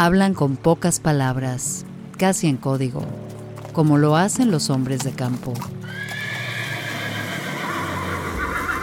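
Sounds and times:
speech: 0:00.0 - 0:06.2
horse hooves clopping and shuffling: 0:02.2 - 0:08.8
horses neighing restlessly: 0:05.6 - 0:08.8.

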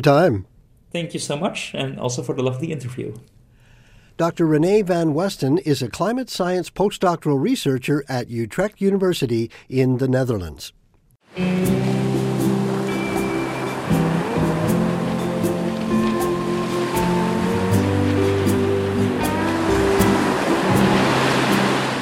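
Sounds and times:
speech: 0:00.0 - 0:03.3, 0:04.2 - 0:11.9
ocean surf with waves breaking continuously: 0:11.3 - 0:22.0
sustained low humming tones: 0:11.4 - 0:22.0.

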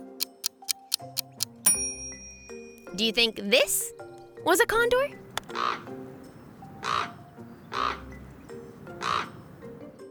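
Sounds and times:
speech: 0:03.0 - 0:06.0
common raven giving harsh croaking calls: 0:05.4 - 0:09.9.

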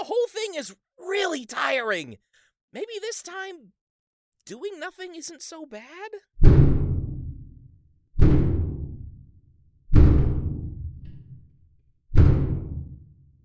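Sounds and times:
speech: 0:00.0 - 0:03.8, 0:04.5 - 0:06.7
heavy booming knocks on a door: 0:06.4 - 0:07.6, 0:08.2 - 0:09.3, 0:09.9 - 0:11.3, 0:12.1 - 0:13.1.

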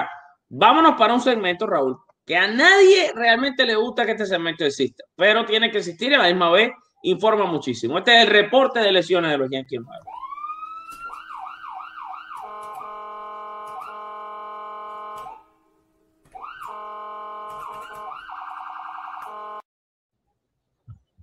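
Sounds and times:
speech: 0:00.5 - 0:10.2
ambulance siren sound effect wailing and yelping: 0:10.0 - 0:15.6, 0:16.3 - 0:19.6.

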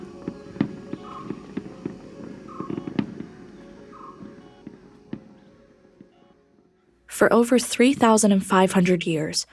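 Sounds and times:
fireworks banging and crackling at an island fiesta: 0:00.0 - 0:06.7
speech: 0:07.2 - 0:09.5.

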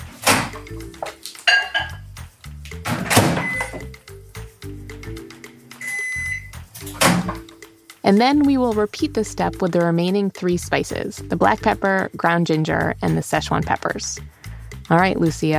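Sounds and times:
microwave oven door thunks: 0:00.2 - 0:00.7, 0:02.9 - 0:03.8, 0:06.9 - 0:07.5
microwave oven short electronic beeps: 0:03.4 - 0:03.9, 0:05.8 - 0:06.5
speech: 0:08.0 - 0:15.5.

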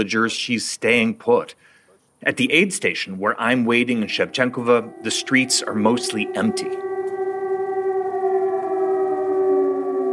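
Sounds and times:
speech: 0:00.0 - 0:06.9
air raid siren wailing: 0:03.2 - 0:10.1.

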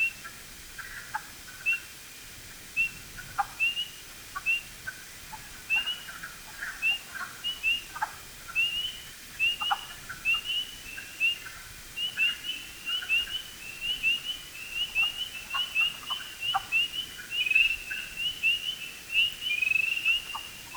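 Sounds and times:
spring peepers peeping in a dense chorus: 0:02.8 - 0:20.7
low croaks of other frog species: 0:05.4 - 0:20.7.

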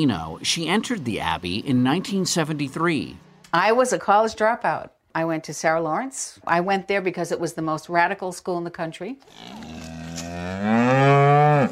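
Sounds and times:
speech: 0:00.0 - 0:11.6
cow mooing: 0:09.3 - 0:11.6.

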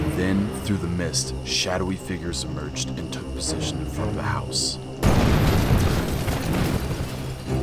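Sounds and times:
speech: 0:00.2 - 0:04.9
explosion with heavy low-end rumble: 0:05.0 - 0:07.6.

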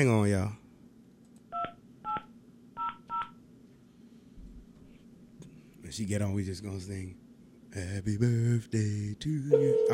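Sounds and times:
speech: 0:00.0 - 0:00.6, 0:05.9 - 0:09.9
low steady hum: 0:00.0 - 0:09.9
telephone keypad dialing tones: 0:09.5 - 0:09.9.

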